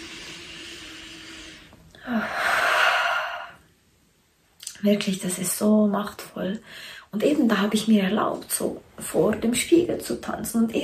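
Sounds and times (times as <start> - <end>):
person taking a deep slow breath: 0.0 - 3.7
speech: 4.8 - 10.8.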